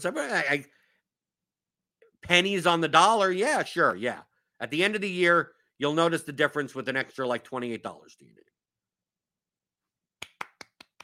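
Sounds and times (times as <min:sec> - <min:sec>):
speech: 0:00.0 - 0:00.8, 0:02.2 - 0:08.5
soft golf-clap style hand claps: 0:10.2 - 0:11.0.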